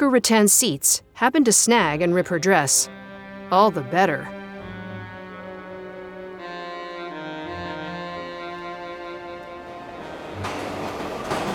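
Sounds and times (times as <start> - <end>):
speech: 0.0 - 4.4
subway train riding and arriving: 8.6 - 11.5.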